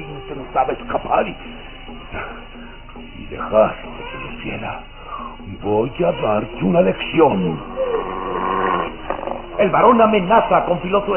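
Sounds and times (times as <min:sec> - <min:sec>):
speech: 0:00.5 - 0:08.1, 0:09.6 - 0:11.1
large mastiff growling menacingly: 0:07.8 - 0:09.4.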